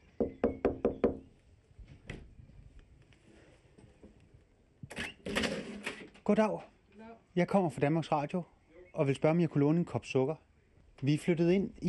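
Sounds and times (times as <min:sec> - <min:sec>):
knocking on the front door of a house: 0:00.2 - 0:01.2
speech: 0:06.3 - 0:06.8, 0:07.4 - 0:11.8.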